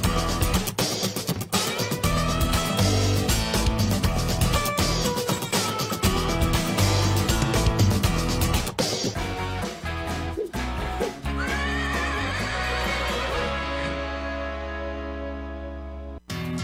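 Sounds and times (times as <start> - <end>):
music: 0.0 - 16.6
horse whinnying: 11.3 - 14.4.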